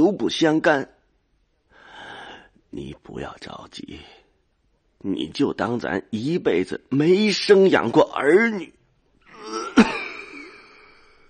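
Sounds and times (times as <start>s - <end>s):
speech: 0.0s - 1.0s, 2.7s - 4.2s, 5.0s - 8.8s
harsh throaty cough: 9.3s - 10.6s.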